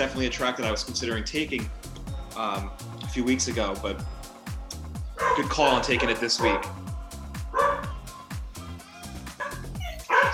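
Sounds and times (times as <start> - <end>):
speech: 0.0 - 4.2, 5.3 - 6.8
dog barking and yipping: 5.2 - 6.8, 7.5 - 8.0, 9.4 - 10.3.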